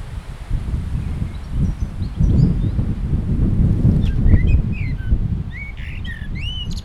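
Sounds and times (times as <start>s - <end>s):
common blackbird fluty whistled song: 1.0s - 2.9s, 3.8s - 6.8s.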